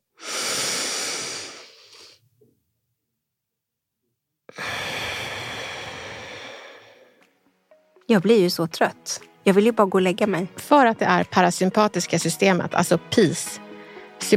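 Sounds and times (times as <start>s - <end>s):
slow deliberate breathing in through the nose and out through the mouth: 0.2s - 2.3s, 4.5s - 7.4s
speech: 8.1s - 13.6s, 14.2s - 14.3s.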